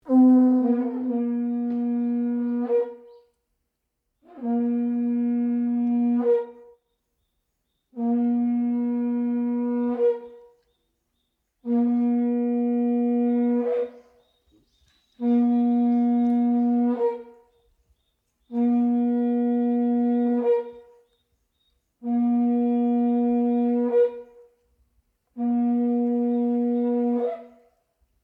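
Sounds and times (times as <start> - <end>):
Japanese shell trumpet: 0.0 - 3.2, 4.2 - 6.8, 7.9 - 10.6, 11.6 - 14.2, 15.1 - 17.5, 18.5 - 21.0, 22.0 - 24.6, 25.3 - 27.8.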